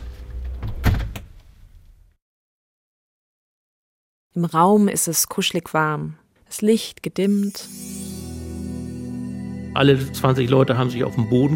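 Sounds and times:
thick multilayer heavy door sliding and swinging shut with thud: 0:00.6 - 0:01.3
speech: 0:04.4 - 0:08.0, 0:09.8 - 0:11.5.

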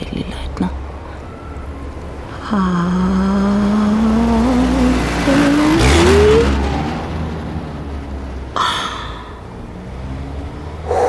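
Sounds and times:
car engine revving, pulling away and roaring past: 0:02.5 - 0:11.0.

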